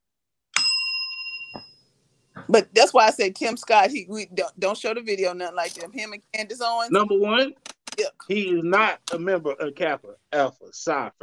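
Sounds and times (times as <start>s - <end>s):
bell struck and ringing: 0.6s - 1.9s
speech: 2.5s - 11.2s.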